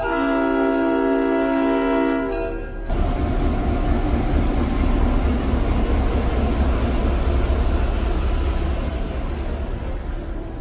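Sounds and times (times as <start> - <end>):
steam train whistle: 0.0 - 3.0
moving steam train rumbling clatter: 1.8 - 10.5.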